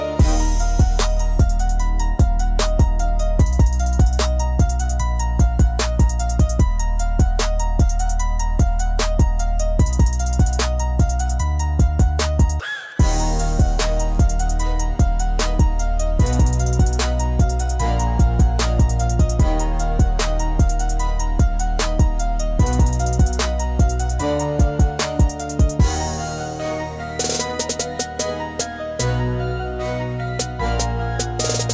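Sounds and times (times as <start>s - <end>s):
rap beat bassline: 0.2s - 29.2s, 30.4s - 31.7s.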